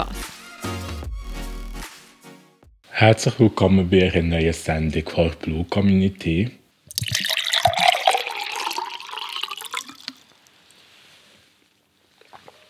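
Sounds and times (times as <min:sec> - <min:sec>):
speech: 0:03.0 - 0:06.6
soft faint noise: 0:03.0 - 0:12.6
person taking a sip of water: 0:06.9 - 0:10.6, 0:12.1 - 0:12.6.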